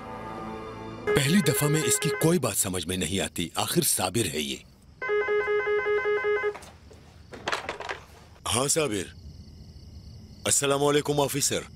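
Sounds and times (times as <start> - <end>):
telephone ringing with a trilling electronic pulse: 1.1 - 2.4, 5.0 - 6.6
speech: 1.1 - 4.7, 8.5 - 9.2, 10.4 - 11.7
telephone receiver handling and clattering: 6.6 - 8.3.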